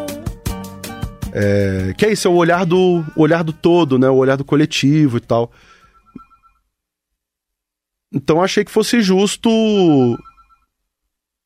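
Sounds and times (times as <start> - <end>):
speech: 1.3 - 5.8, 8.1 - 10.3
telephone ringing: 5.8 - 6.7, 10.0 - 10.8.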